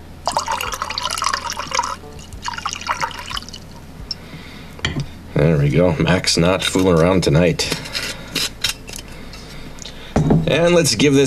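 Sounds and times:
eggnog liqueur dripping: 0.2s - 4.2s
thick eggnog liqueur pouring into a glass: 0.3s - 3.8s
speech: 5.4s - 8.1s, 10.5s - 11.2s.

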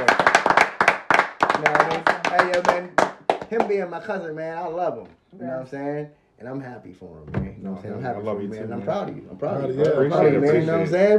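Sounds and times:
quick uneven hand clapping: 0.0s - 3.9s
speech: 3.6s - 11.1s.

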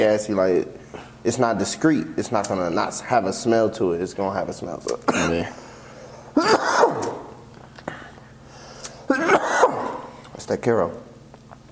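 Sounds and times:
speech: 0.0s - 5.6s, 6.4s - 7.0s, 10.5s - 11.1s
person coughing: 5.1s - 5.6s, 6.4s - 7.3s, 9.1s - 10.2s.

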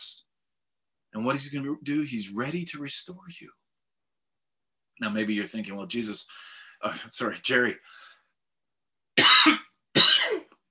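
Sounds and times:
speech: 1.2s - 3.6s, 5.0s - 8.0s
person coughing from a tickle in the throat: 9.2s - 10.6s.

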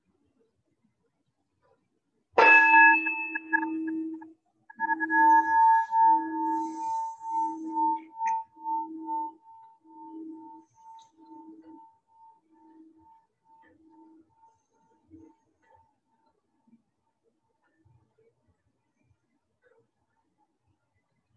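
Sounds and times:
meditation bell struck and ringing out for Buddhist practice: 2.4s - 4.2s, 4.8s - 14.4s.

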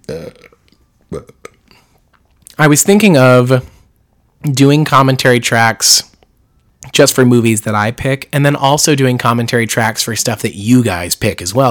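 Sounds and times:
person burping: 0.0s - 1.9s
speech: 2.6s - 3.7s, 4.4s - 6.1s, 6.9s - 11.6s.

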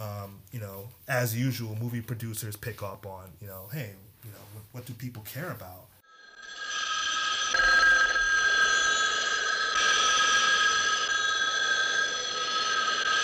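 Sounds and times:
speech: 0.5s - 5.9s
telephone bell ringing: 6.0s - 13.2s.

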